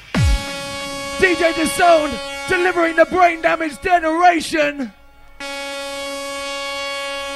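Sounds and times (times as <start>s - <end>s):
loud sustained brassy horn blast: 0.1s - 7.3s
speech: 1.2s - 5.0s.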